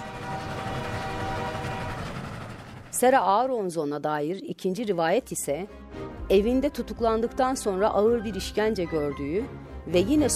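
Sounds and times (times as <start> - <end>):
sustained horn-like tone: 0.0 - 2.7
train rumbling along the tracks: 0.0 - 3.5
speech: 3.0 - 10.3.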